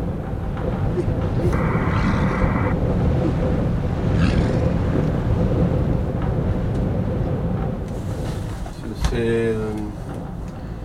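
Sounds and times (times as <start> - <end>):
strong wind roaring around a wooden cabin facing sea ice: 0.0 - 10.8.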